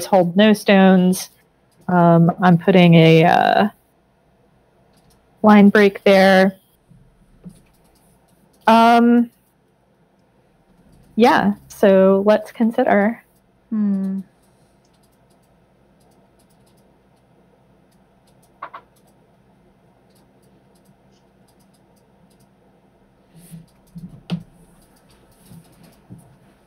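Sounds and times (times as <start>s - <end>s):
speech: 0.0s - 3.8s, 5.4s - 6.6s, 8.7s - 9.4s, 11.2s - 14.3s
several people typing on computer keyboards: 4.9s - 5.2s, 7.4s - 9.5s, 10.7s - 11.2s, 13.8s - 17.3s, 17.9s - 19.2s, 20.0s - 22.6s, 23.4s - 26.4s.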